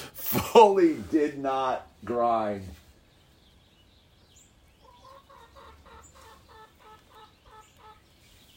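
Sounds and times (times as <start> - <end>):
speech: 0.3 - 2.8
chicken clucking while trying to climb up a quarter pipe: 4.7 - 8.5.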